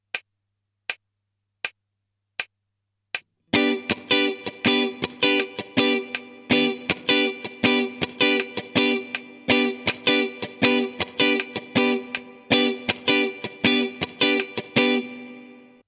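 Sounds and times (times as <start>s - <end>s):
funky rhythm: 3.6s - 15.1s.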